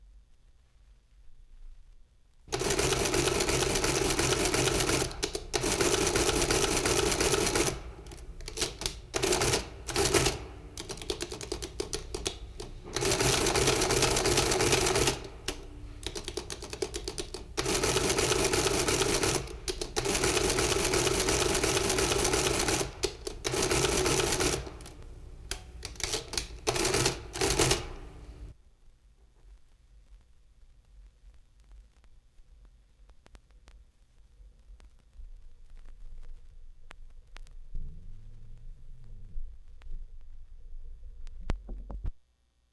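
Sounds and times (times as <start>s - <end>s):
calculator: 2.5s - 28.0s.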